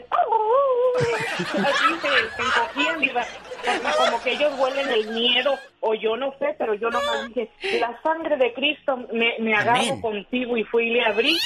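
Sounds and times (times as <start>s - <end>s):
laughter: 1.0s - 5.7s
speech: 1.0s - 11.4s
person imitating cowering dogs whimpering: 9.6s - 10.1s.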